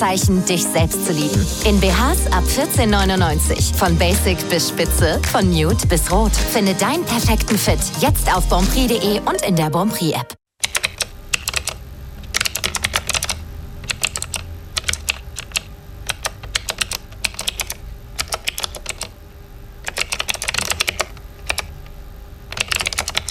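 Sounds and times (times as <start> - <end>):
speech: 0.0 - 10.4
typing on a computer keyboard: 10.6 - 19.1, 19.8 - 21.7, 22.5 - 23.2.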